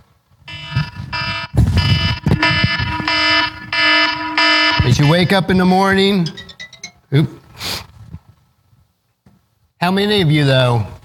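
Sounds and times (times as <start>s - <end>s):
alarm clock buzzing in harsh electronic bursts: 0.5s - 7.0s
speech: 5.0s - 6.4s, 7.1s - 7.4s, 9.8s - 11.0s.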